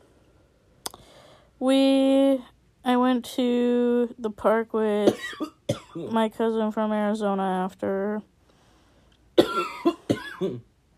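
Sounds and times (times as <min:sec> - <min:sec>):
speech: 0:01.6 - 0:08.3, 0:10.4 - 0:10.7
harsh throaty coughs in a coughing fit: 0:05.1 - 0:06.0, 0:09.4 - 0:10.7.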